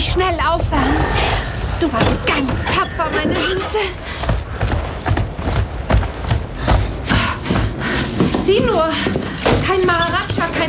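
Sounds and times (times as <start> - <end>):
speech: 0.2 - 0.9, 1.8 - 4.2, 8.5 - 10.6
horses' hooves clip-clopping as they are led into a stable: 3.4 - 10.6.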